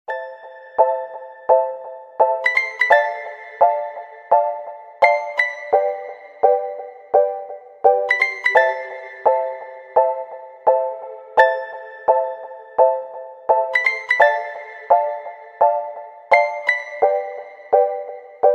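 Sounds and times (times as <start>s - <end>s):
simple stylish Russian mobile phone ringtone: 0.1s - 18.5s.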